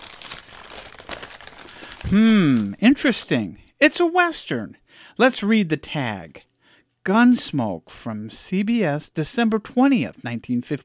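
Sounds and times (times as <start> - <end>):
wrapping paper crinkling as a Christmas package is unwrapped: 0.0 - 3.3
speech: 2.1 - 10.8.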